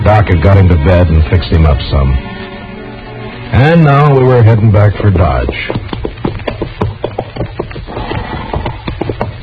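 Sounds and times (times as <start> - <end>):
speech: 0.1 - 2.3, 3.5 - 5.9
horse hooves clip-clopping and stomping at a walk: 3.8 - 9.4.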